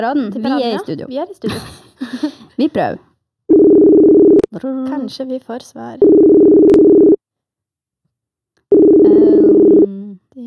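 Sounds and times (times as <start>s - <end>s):
speech: 0.0s - 3.6s, 4.5s - 6.9s, 9.1s - 10.4s
telephone busy signal when placing a call: 3.5s - 4.5s, 6.1s - 7.2s, 8.7s - 9.9s.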